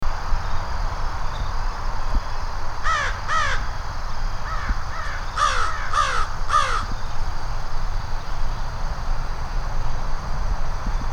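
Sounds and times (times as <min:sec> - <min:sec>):
traffic rumble: 0:00.1 - 0:11.1
American crow cawing from a tree at a lake sanctuary: 0:02.8 - 0:03.7, 0:04.5 - 0:07.0.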